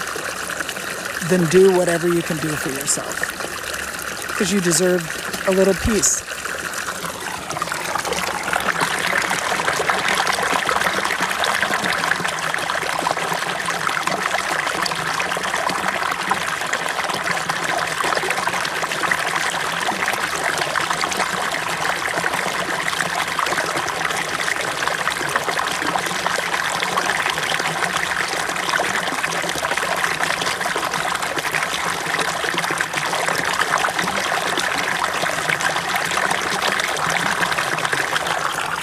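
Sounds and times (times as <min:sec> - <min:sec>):
stream trickling and babbling over rocks: 0:00.0 - 0:38.8
speech: 0:01.2 - 0:03.8, 0:04.4 - 0:06.4.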